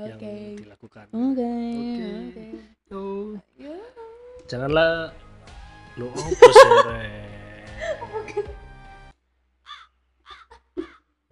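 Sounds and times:
speech: 0:00.0 - 0:03.0, 0:04.5 - 0:05.2, 0:06.0 - 0:07.2
noise: 0:00.0 - 0:11.3
laughter: 0:06.1 - 0:08.6
crow cawing in short harsh bursts: 0:09.7 - 0:11.0.

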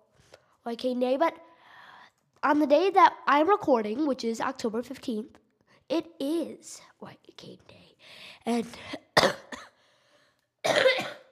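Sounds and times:
speech: 0:00.6 - 0:01.5, 0:02.4 - 0:09.4
person coughing: 0:08.8 - 0:09.8, 0:10.6 - 0:11.3.

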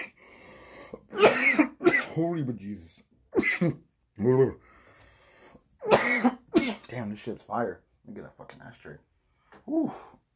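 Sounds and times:
drawn-in breath: 0:00.1 - 0:01.1, 0:04.6 - 0:05.7
harsh rasping coughing: 0:01.1 - 0:02.3, 0:03.3 - 0:03.8, 0:05.8 - 0:07.0
speech: 0:02.2 - 0:04.7, 0:06.2 - 0:10.2.

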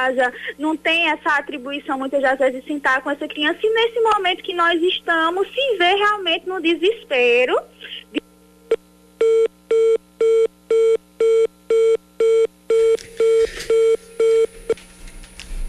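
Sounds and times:
speech: 0:00.0 - 0:08.2
busy tone of a disconnected phone line: 0:09.2 - 0:14.8.

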